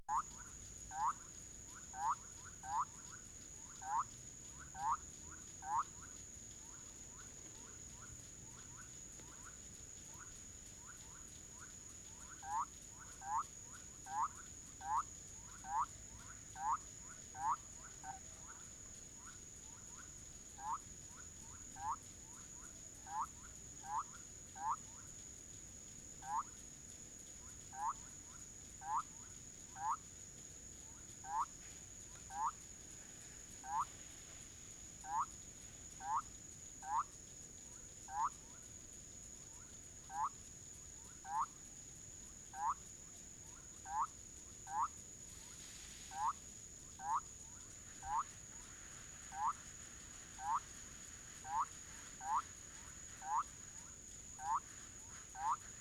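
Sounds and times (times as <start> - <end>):
Leptodactylus bolivianus calling: 0.1 - 6.1, 10.1 - 25.0, 26.2 - 26.6, 27.7 - 30.1, 31.2 - 32.6, 33.6 - 33.9, 35.0 - 37.2, 38.1 - 38.5, 39.6 - 40.4, 41.0 - 41.6, 42.5 - 45.0, 46.1 - 46.4, 47.0 - 48.7, 49.3 - 49.6, 50.3 - 50.8, 51.4 - 55.8.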